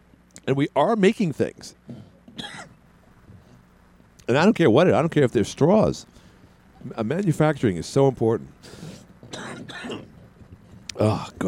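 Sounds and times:
speech: 0:00.5 - 0:02.6, 0:04.3 - 0:06.1, 0:06.8 - 0:08.9, 0:11.0 - 0:11.4
quick rough coughs: 0:02.4 - 0:02.8, 0:09.3 - 0:10.1.

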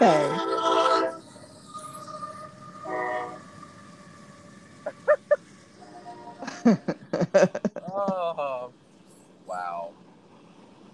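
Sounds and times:
laughter: 0:00.0 - 0:01.0, 0:06.4 - 0:08.6
train horn in long tonal blasts: 0:00.0 - 0:01.2, 0:02.7 - 0:04.3, 0:05.8 - 0:06.7
train rumbling past: 0:00.0 - 0:10.9
speech: 0:06.6 - 0:07.6.

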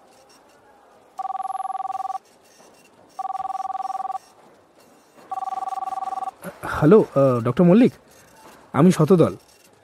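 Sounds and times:
telephone keypad dialing beeps: 0:01.2 - 0:02.2, 0:03.2 - 0:04.2, 0:05.3 - 0:06.3
speech: 0:06.8 - 0:08.1, 0:08.7 - 0:09.5.

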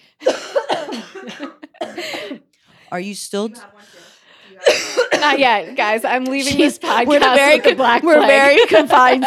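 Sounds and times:
person coughing: 0:00.2 - 0:02.5, 0:04.6 - 0:05.5
speech: 0:02.9 - 0:04.0, 0:05.2 - 0:09.2
laughter: 0:03.8 - 0:09.2.

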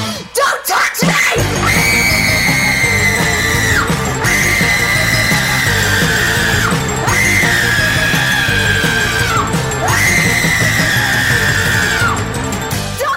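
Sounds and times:
impassioned human screaming: 0:00.0 - 0:12.3
dense driving musical backing: 0:01.0 - 0:13.1.

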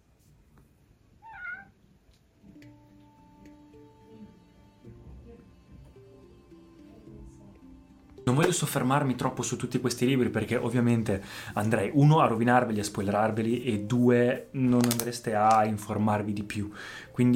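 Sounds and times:
cat meowing: 0:01.2 - 0:01.8
steady sustained tones: 0:02.6 - 0:09.4
speech: 0:08.3 - 0:17.3.

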